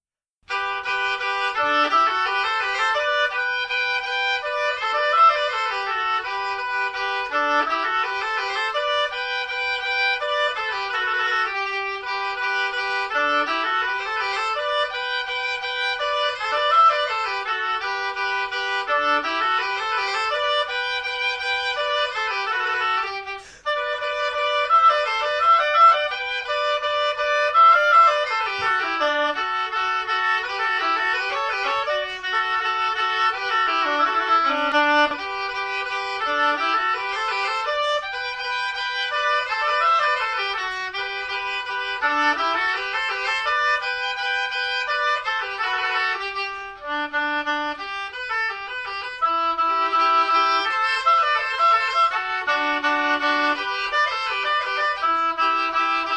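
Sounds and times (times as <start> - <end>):
oboe duet playing a rondeau: 0.5 - 56.1.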